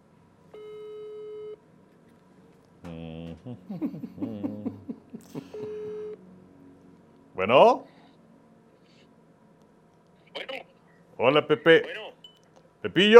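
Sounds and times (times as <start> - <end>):
WhatsApp outgoing call ringing tone: 0.5 - 1.6, 5.5 - 6.2
laughter: 3.2 - 5.9
speech: 3.4 - 5.8, 7.4 - 7.9, 11.2 - 12.1, 12.8 - 13.1.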